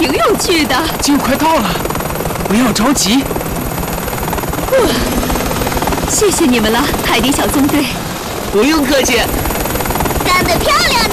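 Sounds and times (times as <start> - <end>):
helicopter propeller spinning: 0.0 - 11.1
speech: 0.5 - 3.4, 4.7 - 5.3, 6.1 - 9.4, 10.5 - 11.0
tonal chirp: 4.8 - 7.6.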